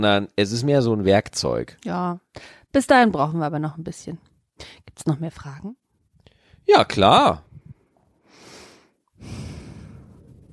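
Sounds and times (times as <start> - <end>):
speech: 0.0 - 5.8, 6.7 - 7.5
heavy breathing: 8.2 - 10.5.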